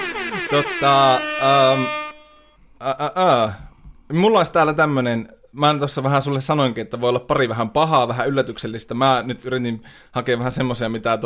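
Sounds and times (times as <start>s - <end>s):
brassy rap air horn sound effect blasts: 0.0s - 2.6s
speech: 0.5s - 2.0s, 2.8s - 11.2s.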